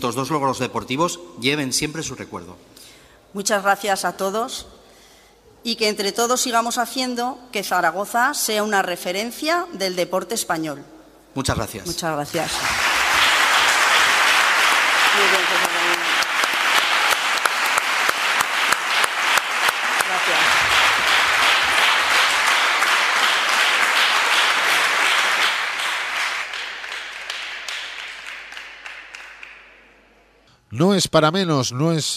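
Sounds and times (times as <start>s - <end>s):
speech: 0.0s - 4.8s, 5.6s - 12.8s, 30.8s - 32.1s
large audience applauding: 12.3s - 30.0s.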